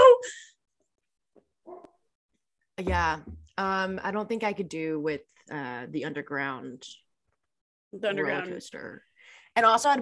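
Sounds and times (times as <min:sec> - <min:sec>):
dog barking at the mailman: 0:01.7 - 0:02.0
speech: 0:02.8 - 0:07.0, 0:07.9 - 0:09.9.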